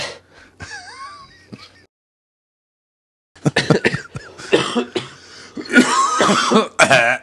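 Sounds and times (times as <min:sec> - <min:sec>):
harsh hacking coughing fit: 0:03.5 - 0:07.2.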